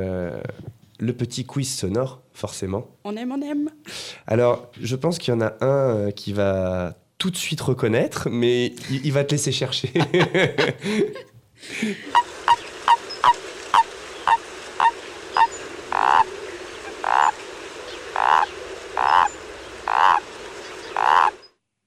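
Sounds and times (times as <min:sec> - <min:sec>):
speech: 0:01.0 - 0:12.2
laughter: 0:09.8 - 0:12.2
small tree frogs croaking: 0:12.1 - 0:21.6.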